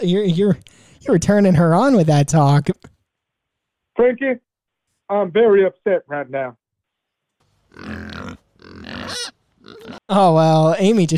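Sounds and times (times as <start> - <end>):
speech: 0.0 - 2.9, 4.0 - 4.4, 5.1 - 6.6, 7.7 - 8.0, 10.1 - 11.1
pig grunting: 7.7 - 10.1.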